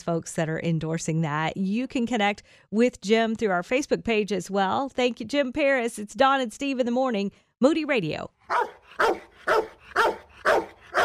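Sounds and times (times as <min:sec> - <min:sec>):
speech: 0:00.0 - 0:11.0
dog barking: 0:08.5 - 0:11.0.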